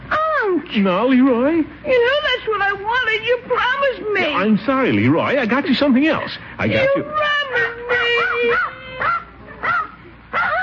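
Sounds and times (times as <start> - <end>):
speech: 0.7 - 7.8
dog giving short yelping barks: 4.3 - 4.6, 7.5 - 10.6.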